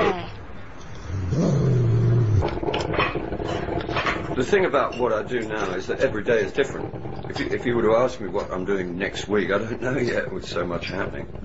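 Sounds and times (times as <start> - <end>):
rumble: 1.0 - 11.4
dog growling howl: 1.1 - 4.4
speech: 4.4 - 11.4.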